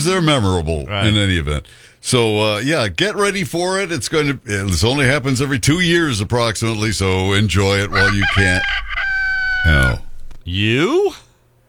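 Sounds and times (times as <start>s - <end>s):
speech: 0.0s - 9.0s, 9.6s - 11.2s
rooster crowing: 7.6s - 10.5s.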